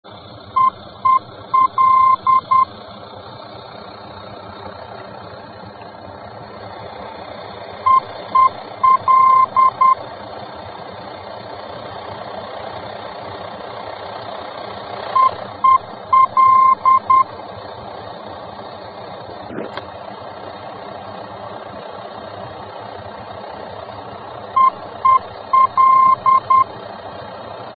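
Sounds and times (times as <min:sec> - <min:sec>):
VOR aerobeacon radio signal in the Netherlands: 0:00.6 - 0:02.8, 0:07.9 - 0:10.0, 0:15.2 - 0:17.3, 0:24.6 - 0:26.7.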